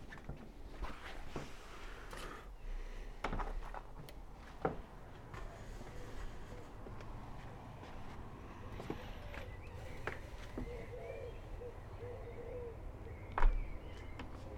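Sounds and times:
steady low outdoor hum: 0:00.0 - 0:14.5
faint bird calls heard outdoors from a balcony: 0:01.9 - 0:03.8, 0:04.8 - 0:14.5.

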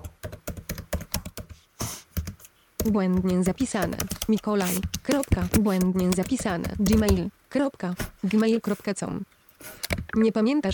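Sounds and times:
person typing an email address on a computer keyboard: 0:00.0 - 0:01.6, 0:02.2 - 0:07.3
speech: 0:02.8 - 0:10.7.

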